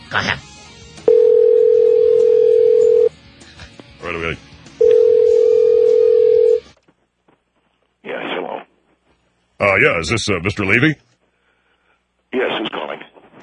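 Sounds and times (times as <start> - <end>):
speech: 0.1 - 0.5, 9.8 - 11.1
telephone dial tone: 1.1 - 3.1, 4.8 - 6.6.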